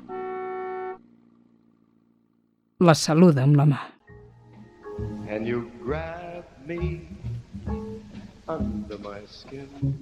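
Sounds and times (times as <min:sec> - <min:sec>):
car horn honking: 0:00.0 - 0:01.3
speech: 0:02.8 - 0:03.9, 0:05.0 - 0:07.8, 0:08.5 - 0:10.0.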